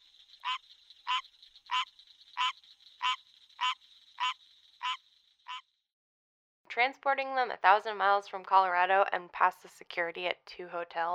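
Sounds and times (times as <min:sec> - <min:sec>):
constant high insect-like drone: 0:00.0 - 0:05.6
frog croaking in short raspy bursts: 0:00.0 - 0:05.7
speech: 0:06.8 - 0:11.1.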